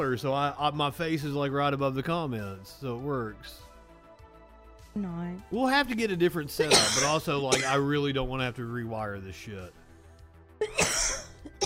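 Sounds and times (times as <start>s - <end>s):
speech: 0.0s - 3.7s, 5.0s - 9.8s, 10.6s - 10.8s
person coughing: 6.6s - 8.0s, 10.6s - 11.6s.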